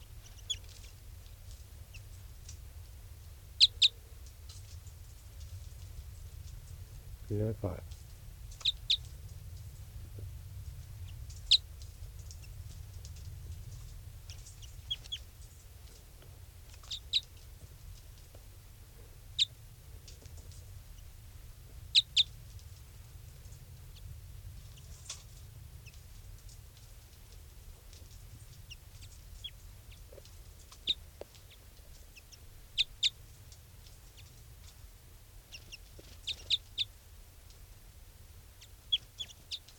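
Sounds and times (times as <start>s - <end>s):
low rumble: 0.0s - 39.7s
bird chirping: 0.2s - 1.0s, 3.6s - 4.8s, 8.5s - 9.1s, 11.0s - 12.8s, 13.6s - 16.0s, 16.7s - 17.5s, 19.3s - 21.1s, 21.9s - 22.4s, 28.0s - 33.2s, 35.4s - 37.0s, 38.6s - 39.7s.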